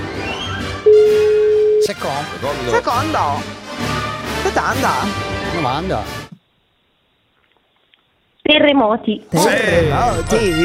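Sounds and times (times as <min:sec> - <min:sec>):
telephone ringing tone: 0:00.9 - 0:02.0
speech: 0:01.9 - 0:03.6, 0:04.5 - 0:06.2, 0:08.5 - 0:10.6
low noise: 0:06.3 - 0:10.0.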